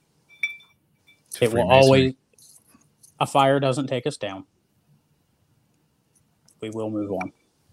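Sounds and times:
glasses clinking in a toast: 0.3s - 2.1s
speech: 1.4s - 2.2s, 3.2s - 4.5s, 6.6s - 7.4s.

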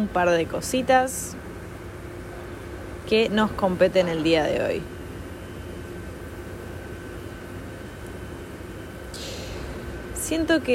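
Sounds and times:
speech: 0.0s - 1.4s, 3.1s - 4.9s, 10.3s - 10.7s
sharp hiss of air: 9.0s - 10.2s
garbage truck engine rumbling: 9.0s - 10.7s.

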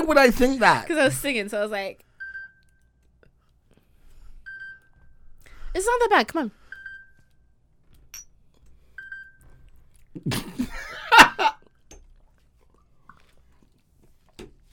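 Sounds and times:
speech: 0.0s - 2.1s, 5.8s - 6.6s, 10.1s - 10.8s
person gulping a drink: 11.7s - 13.8s.

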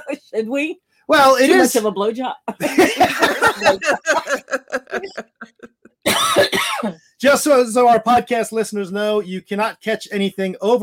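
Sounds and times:
speech: 0.1s - 5.3s, 7.2s - 10.8s
laughter: 2.6s - 6.0s
person with a sinus cold coughing: 2.8s - 5.2s, 6.0s - 7.1s.

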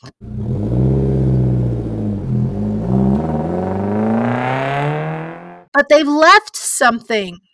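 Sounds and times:
car engine starting and car driving off out of a house's driveway: 0.1s - 5.7s
speech: 5.8s - 7.5s.

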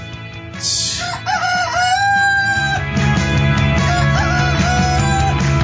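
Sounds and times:
rooster crowing: 0.6s - 2.9s, 3.8s - 5.5s.

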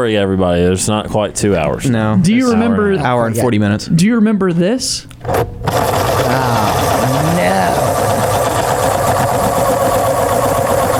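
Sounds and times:
speech: 0.0s - 7.9s
automatic pencil sharpener whirring: 5.4s - 10.9s.

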